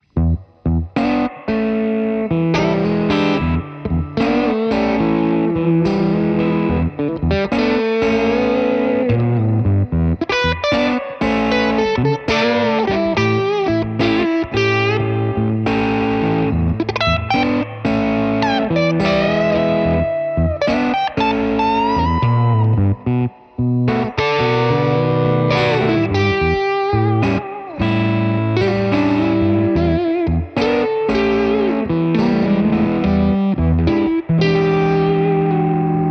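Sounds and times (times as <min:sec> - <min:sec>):
blues on a Les Paul electric guitar: 0:00.0 - 0:36.0.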